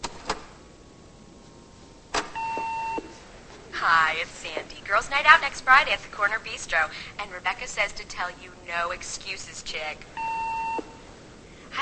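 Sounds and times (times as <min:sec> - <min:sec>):
telephone electronic beep tone: 0:02.4 - 0:03.1, 0:10.2 - 0:11.0
telephone chirp: 0:02.4 - 0:03.2, 0:10.2 - 0:11.0
speech: 0:04.1 - 0:10.3.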